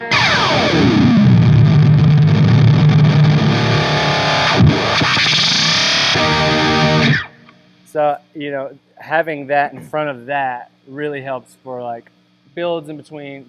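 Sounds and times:
loud distorted electric guitar through a delay pedal: 0.0 - 7.6
speech: 8.0 - 13.4.

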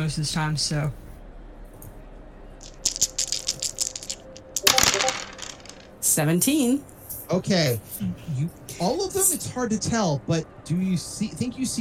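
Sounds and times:
speech: 0.0 - 1.0, 6.2 - 11.7
dice rolled for a game rattling across a hard tabletop: 2.6 - 6.0.

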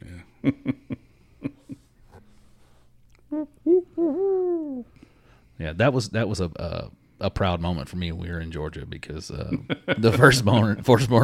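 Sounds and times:
speech: 0.4 - 0.9, 5.6 - 11.2
person imitating barred owl hooting call: 3.3 - 5.0.

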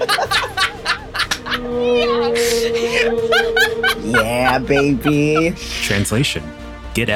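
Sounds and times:
laughter: 0.0 - 6.0
voice imitating humpback whale song: 1.4 - 5.7
speech: 4.1 - 7.1.

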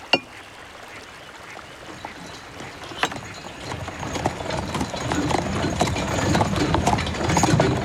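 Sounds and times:
horse hooves of a horse-drawn carriage clip-clopping: 1.0 - 7.8
horse-drawn carriage wheels rumbling: 1.8 - 7.8.

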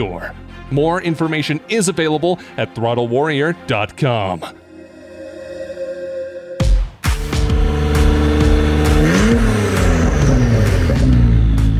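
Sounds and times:
speech: 0.0 - 4.6
Honda NSX sports car engine revving: 7.4 - 11.7.

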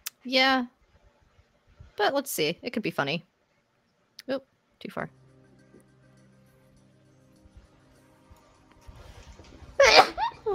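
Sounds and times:
speech: 0.2 - 0.8, 2.0 - 3.3, 4.3 - 5.2
person sneezing: 9.8 - 10.2.

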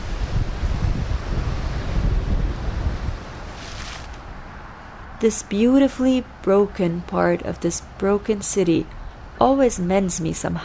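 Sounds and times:
sea breeze buffeting a microphone by the shore along a corniche: 0.0 - 5.0
wash of surf by the shore: 0.0 - 5.1
speech: 5.2 - 10.6.

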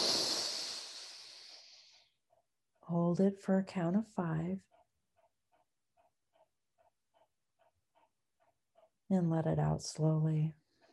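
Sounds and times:
quick breath in during a guided breathing exercise: 0.0 - 2.1
speech: 2.9 - 4.8, 9.1 - 10.6.

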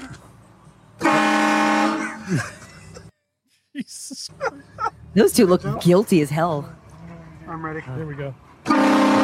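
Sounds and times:
car horn honking: 1.0 - 2.2, 8.6 - 9.2
speech: 2.3 - 2.6, 3.9 - 6.8, 7.6 - 8.4.

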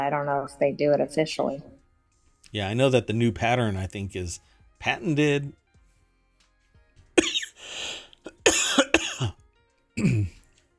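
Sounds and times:
speech: 0.0 - 1.8, 2.5 - 5.6, 10.0 - 10.4
throat clearing: 7.2 - 7.6, 8.3 - 9.4, 10.0 - 10.4
person coughing: 7.2 - 9.4, 10.0 - 10.4.

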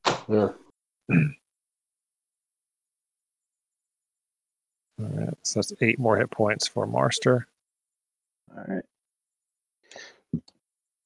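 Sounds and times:
speech: 0.3 - 1.4, 5.0 - 7.5, 8.5 - 8.9
person clearing throat: 1.1 - 1.4.

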